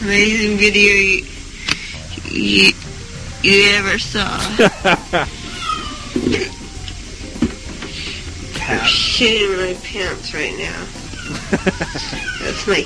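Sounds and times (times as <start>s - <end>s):
speech: 0.0s - 1.3s, 2.3s - 2.8s, 3.4s - 5.4s, 8.7s - 12.8s
hissy cluttered indoor background: 0.0s - 12.8s
laughter: 4.4s - 5.6s, 11.1s - 12.6s
cat meowing: 5.3s - 6.6s, 11.1s - 12.8s.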